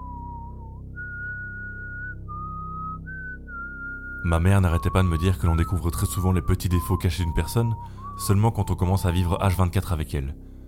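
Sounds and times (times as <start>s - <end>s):
woman whistling a strange slow wavering tune: 0.0s - 4.2s, 6.8s - 8.3s
speech: 4.2s - 10.5s.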